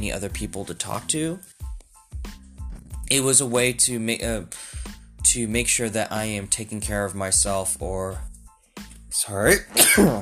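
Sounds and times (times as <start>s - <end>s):
speech: 0.0s - 1.6s, 3.1s - 8.3s, 9.1s - 10.2s
sneeze: 9.7s - 10.2s.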